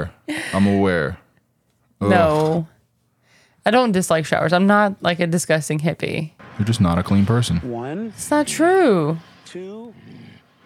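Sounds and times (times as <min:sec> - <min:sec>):
speech: 0:00.0 - 0:01.2, 0:02.0 - 0:02.8, 0:03.6 - 0:10.3
dog growling: 0:09.9 - 0:10.5.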